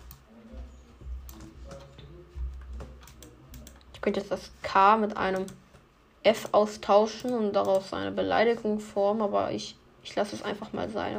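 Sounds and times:
rapid computer mouse clicking: 0:00.0 - 0:00.2, 0:01.2 - 0:04.1, 0:05.1 - 0:07.9
low steady hum: 0:00.0 - 0:11.1
rapid computer keyboard clicking: 0:01.2 - 0:03.9, 0:05.2 - 0:05.7
speech: 0:04.0 - 0:05.6, 0:06.2 - 0:11.1.

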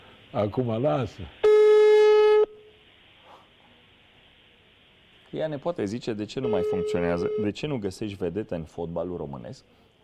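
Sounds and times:
faint hum: 0:00.0 - 0:10.0
speech: 0:00.3 - 0:01.4, 0:05.3 - 0:10.0
telephone call tone on an unanswered call: 0:01.4 - 0:02.7, 0:06.4 - 0:07.7.

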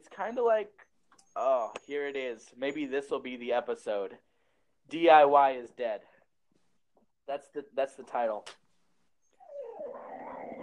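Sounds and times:
speech: 0:00.2 - 0:04.3, 0:04.9 - 0:06.1, 0:07.3 - 0:08.6
dog whimpering and growling: 0:09.3 - 0:10.6.

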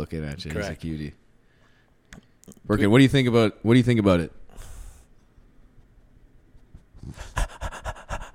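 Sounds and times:
speech: 0:00.0 - 0:01.2, 0:02.1 - 0:04.4, 0:07.0 - 0:07.4
male dog panting: 0:07.0 - 0:08.3.

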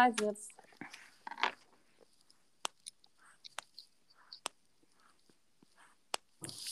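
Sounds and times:
speech: 0:00.0 - 0:00.6
pen being handled, clicking and scraping: 0:00.8 - 0:05.1.

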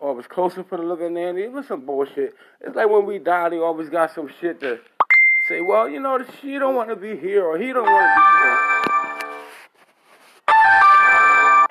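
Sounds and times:
speech: 0:00.2 - 0:04.9, 0:05.5 - 0:08.7
mobile phone ringing with a bright melodic electronic tone: 0:07.8 - 0:09.6, 0:10.5 - 0:11.6.

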